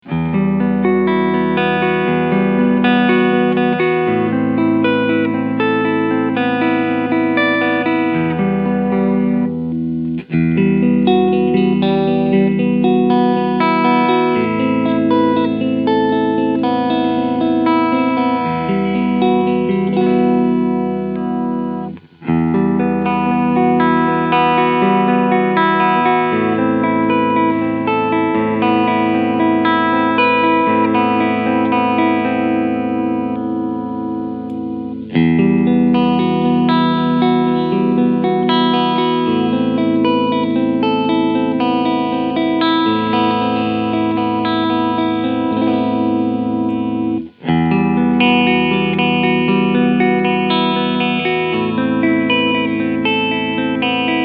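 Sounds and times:
electric guitar clean sound: 0.0s - 54.2s.

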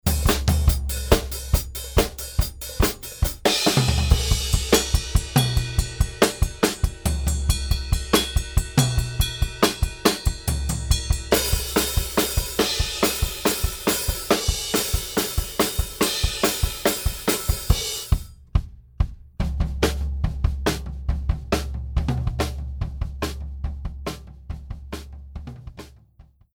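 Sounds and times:
drum kit without compression: 0.0s - 25.9s.

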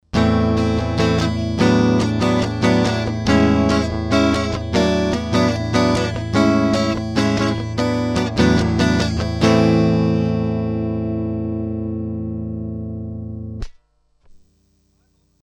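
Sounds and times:
electric guitar DI through GAP Pre 73 DLX MKII preamp: 0.0s - 13.7s.

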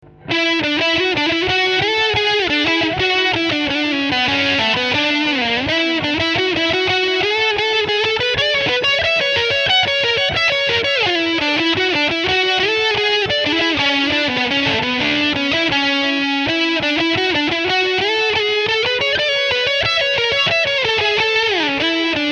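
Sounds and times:
bridge single coil pickup tone with filter position 4: 0.0s - 22.3s.

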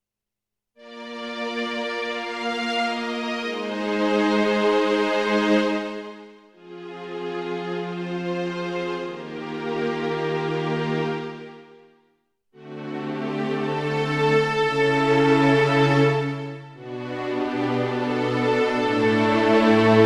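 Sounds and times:
Roland HP702 digital piano Symphonic Strings voice: 0.9s - 11.8s, 12.6s - 20.0s.

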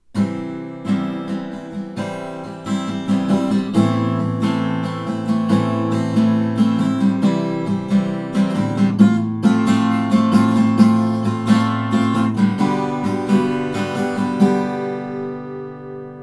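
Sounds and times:
guitar: 0.0s - 16.2s.

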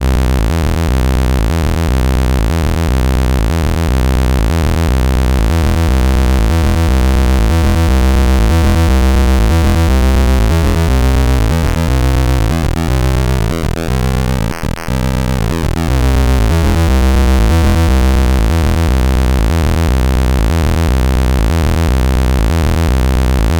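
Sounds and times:
synth bass through analog effects: 0.0s - 23.5s.

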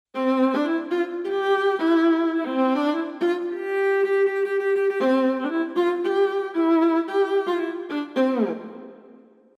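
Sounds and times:
emotional viola playing a czardas with sforzando ornaments: 0.2s - 9.5s.

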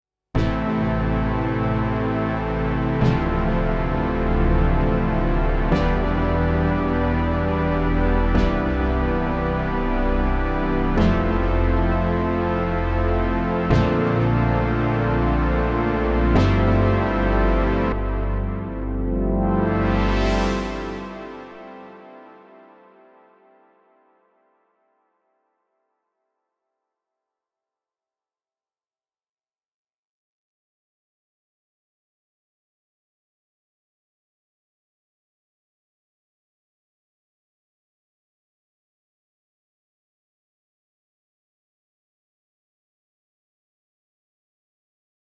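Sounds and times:
Moog synthesizer with stereo echo: 0.4s - 24.7s.

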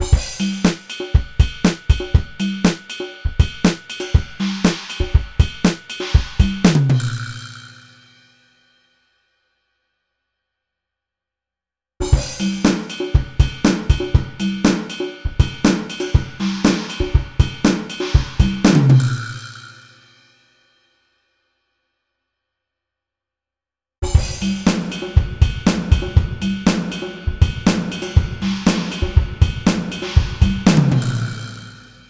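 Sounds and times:
drum: 0.0s - 8.0s, 12.0s - 20.0s, 24.0s - 32.0s.

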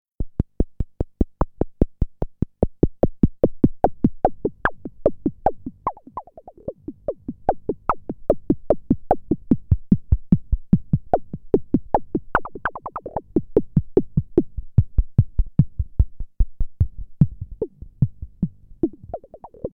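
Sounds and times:
resonant analog filter synth percussion: 0.2s - 19.7s.

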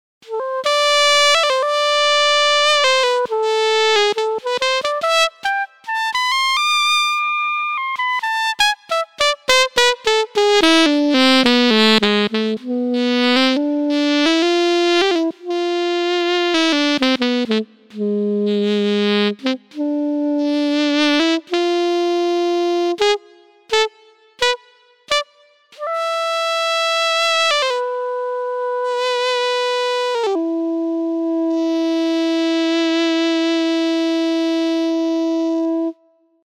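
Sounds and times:
Korg Prophecy VST alto sax: 0.2s - 36.4s.

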